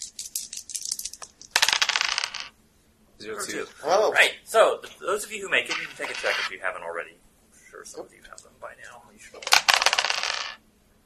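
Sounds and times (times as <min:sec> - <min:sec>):
dice rattling and clattering across a hard surface: 0:00.0 - 0:02.5, 0:05.7 - 0:06.5, 0:09.4 - 0:10.6
speech: 0:03.2 - 0:09.5.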